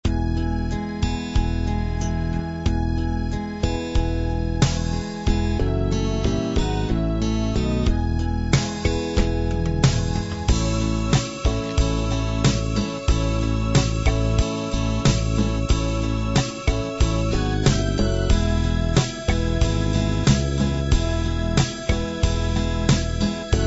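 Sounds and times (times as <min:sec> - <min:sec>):
ballad: 0:00.0 - 0:23.6.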